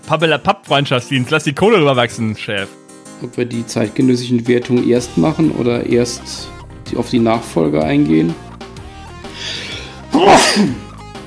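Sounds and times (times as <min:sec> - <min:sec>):
speech: 0:00.1 - 0:08.5, 0:09.4 - 0:10.9
person sneezing: 0:09.4 - 0:10.9.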